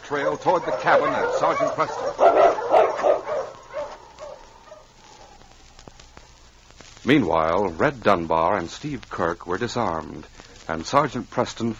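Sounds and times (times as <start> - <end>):
sled dog team barking and yipping: 0.0 - 6.2
speech: 0.1 - 3.3, 7.0 - 11.7.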